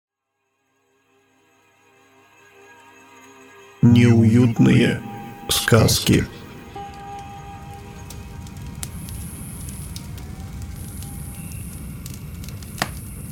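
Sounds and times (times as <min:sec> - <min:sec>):
speech: 0:03.8 - 0:06.4
styrofoam from refrigerator packaging crunching and creaking: 0:07.8 - 0:13.2.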